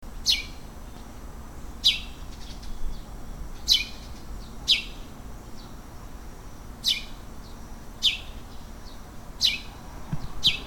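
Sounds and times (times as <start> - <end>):
sparrow chirping: 0.2 - 0.6, 1.8 - 5.8, 6.8 - 10.6.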